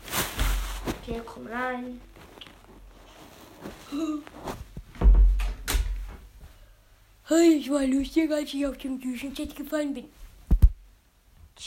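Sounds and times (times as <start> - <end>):
speech: 1.1 - 2.2, 3.6 - 4.6, 7.3 - 10.2
wooden door thuds: 5.0 - 6.1.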